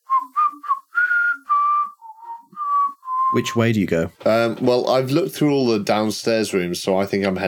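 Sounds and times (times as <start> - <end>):
person whistling a melody: 0.0 - 3.5
speech: 3.3 - 7.4.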